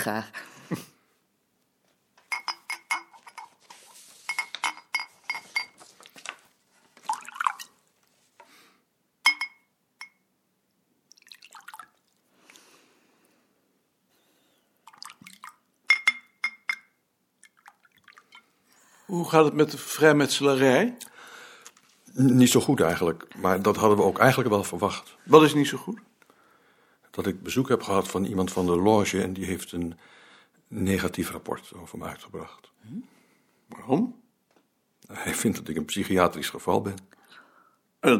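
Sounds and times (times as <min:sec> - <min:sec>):
speech: 0:00.0 - 0:00.9, 0:19.1 - 0:21.1, 0:22.2 - 0:26.1, 0:27.2 - 0:34.2, 0:35.0 - 0:37.2
bright glassy clinks and taps: 0:02.3 - 0:03.6, 0:04.3 - 0:05.8, 0:09.2 - 0:10.3, 0:15.0 - 0:17.0
liquid pouring into small glasses: 0:07.0 - 0:07.8, 0:11.1 - 0:12.7, 0:14.8 - 0:18.9.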